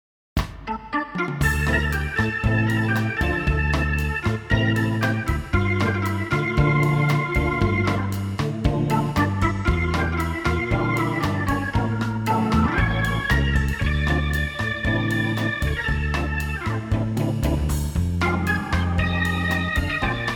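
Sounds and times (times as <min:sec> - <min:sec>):
jazzy bossa nova organ: 0:00.7 - 0:20.3.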